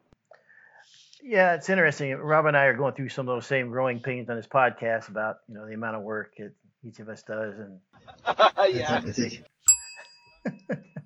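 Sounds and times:
speech: 1.2 - 9.5, 10.4 - 10.9
laughter: 8.0 - 9.5, 10.4 - 11.0
single bright bell strike ringing: 9.7 - 10.5.

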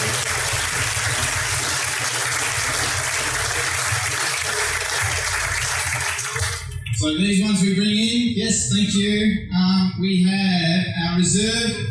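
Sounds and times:
crowd applauding at a barbecue competition awards announcement: 0.0 - 7.0
speech: 7.0 - 11.8.

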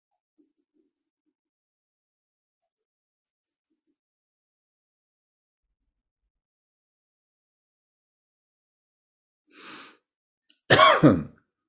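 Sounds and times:
soft breath in: 9.5 - 10.0
loud cough: 10.7 - 11.4.

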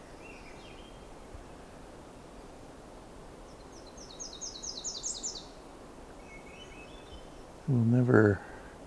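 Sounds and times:
Myrtle Warbler soft call notes: 0.0 - 1.8, 3.4 - 7.5.

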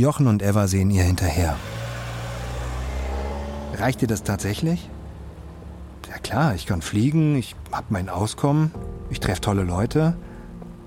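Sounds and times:
speech: 0.0 - 1.8, 3.8 - 4.9, 6.2 - 10.3
car engine running and revving as it drives away: 1.2 - 6.7.

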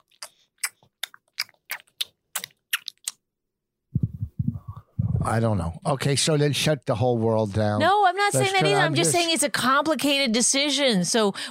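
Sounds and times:
voice imitating gum chewing with wet mouth smacks: 0.0 - 3.2
short low vocal sound: 4.0 - 5.4
speech: 5.2 - 11.5.

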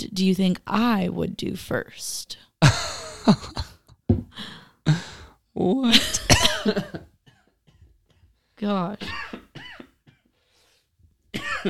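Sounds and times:
speech: 0.2 - 5.0, 5.6 - 7.1, 8.6 - 9.2
person coughing harshly: 6.0 - 8.2, 9.0 - 10.3, 11.4 - 11.6.

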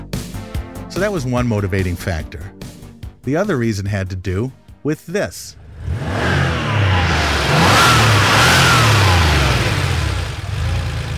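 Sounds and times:
speech: 1.0 - 2.6, 3.2 - 6.4
air-cooled Porsche 911 engine whirring and revving: 5.6 - 11.1.

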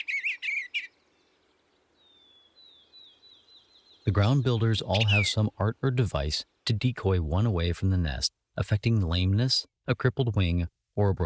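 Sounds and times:
bluebird warbling song: 0.0 - 5.6
speech: 4.1 - 11.2.

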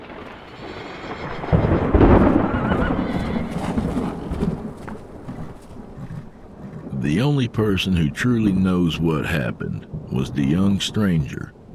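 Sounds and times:
deep rumble of thunder: 0.0 - 11.7
heavy thunderstorm rain: 0.0 - 11.7
horse hooves pounding away: 0.0 - 11.7
horse whinnying: 0.6 - 7.1
speech: 7.1 - 11.6.

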